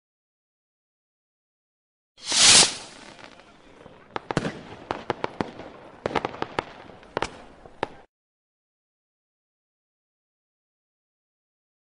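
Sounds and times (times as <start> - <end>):
fireworks: 2.2 - 8.1.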